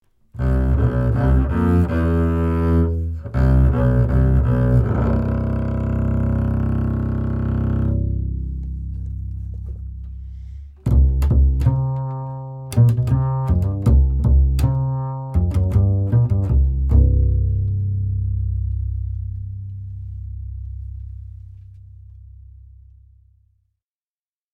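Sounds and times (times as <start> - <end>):
upright bass: 0.4 - 23.4.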